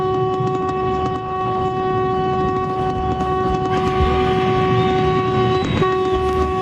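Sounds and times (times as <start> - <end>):
vehicle horn blaring: 0.0 - 6.5.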